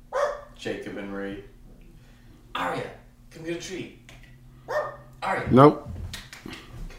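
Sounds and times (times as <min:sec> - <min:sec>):
dog barking: 0:00.1 - 0:00.6, 0:04.7 - 0:05.1
speech: 0:00.6 - 0:01.6, 0:02.6 - 0:04.0, 0:04.7 - 0:06.0.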